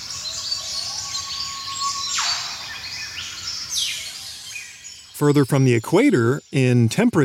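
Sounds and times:
bright downward-sweeping bird whistles: 0:00.0 - 0:04.8
dense chorus of birds chirping and trilling: 0:00.0 - 0:07.2
speech: 0:05.2 - 0:07.2.

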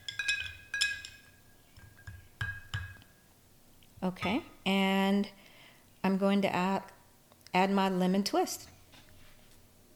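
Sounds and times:
spoon clinking a glass while stirring a cocktail: 0:00.0 - 0:03.1
speech: 0:04.0 - 0:05.4, 0:06.0 - 0:08.7.

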